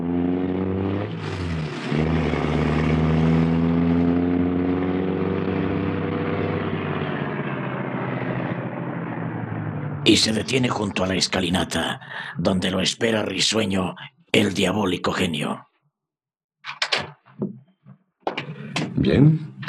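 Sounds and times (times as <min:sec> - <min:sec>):
car engine droning while driving across a garden: 0:00.0 - 0:11.2
speech: 0:10.1 - 0:15.7, 0:19.0 - 0:19.6.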